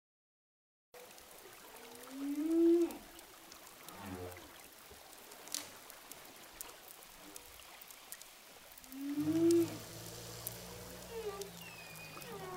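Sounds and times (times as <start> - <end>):
humpback whale rising moan on hydrophone offshore of Saint-Gilles, Réunion: 2.0 - 3.0, 8.9 - 12.5
faint humpback whale pulses: 8.8 - 12.5
low hum: 9.1 - 12.5.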